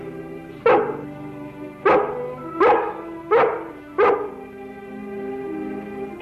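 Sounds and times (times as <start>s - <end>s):
dog barking: 0.6s - 1.1s, 1.8s - 4.3s.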